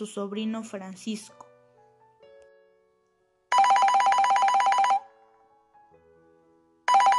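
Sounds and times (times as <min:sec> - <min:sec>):
speech: 0:00.0 - 0:01.4
telephone ringing with an electronic trill in a kitchen: 0:03.5 - 0:05.1, 0:06.9 - 0:07.1.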